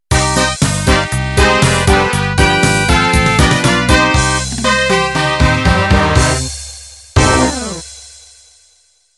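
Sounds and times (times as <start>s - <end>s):
pop polka music ending: 0.1s - 8.0s.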